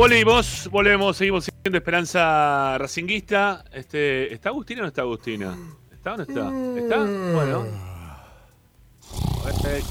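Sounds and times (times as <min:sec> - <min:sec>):
speech: 0:00.0 - 0:07.9, 0:09.1 - 0:09.8
drawn-out low voiced yawn sound effect: 0:05.4 - 0:09.8.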